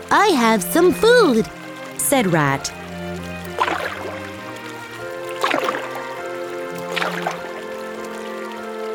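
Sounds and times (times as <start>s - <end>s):
steady tonal background: 0.0s - 8.9s
speech: 0.1s - 2.8s
small rowboat oars splashing through river water: 3.5s - 8.2s.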